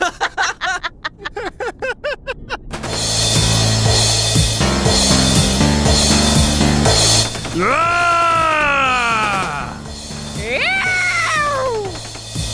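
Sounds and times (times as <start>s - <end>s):
burst of laughter: 0.0s - 2.7s
steady music: 2.8s - 12.5s
man screaming in a mock cowboy drawl: 7.6s - 11.9s.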